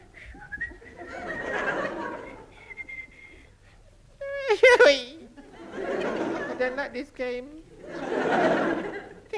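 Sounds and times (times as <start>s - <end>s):
Boy Scout whistling a wavering halting merry tune: 0.2s - 0.9s, 2.6s - 3.3s
laughter: 0.8s - 2.8s, 4.4s - 6.9s, 7.8s - 9.3s
speech: 4.7s - 5.1s, 6.7s - 8.7s.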